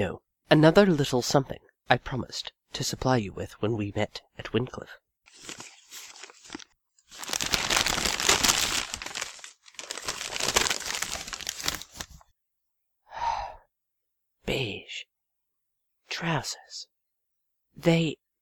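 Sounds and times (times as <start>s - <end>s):
speech: 0.0s - 5.7s, 16.2s - 16.9s, 17.8s - 18.2s
brown paper parcel being torn open and unwrapped: 5.3s - 12.2s
brief breathy gasp: 13.1s - 13.7s.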